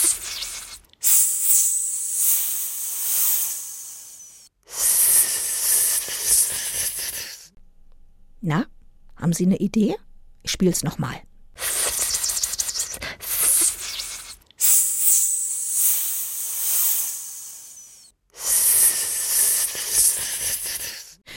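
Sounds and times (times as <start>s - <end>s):
snake hissing in long breathy bursts: 0.0s - 7.5s, 11.6s - 21.2s
speech: 8.4s - 11.3s.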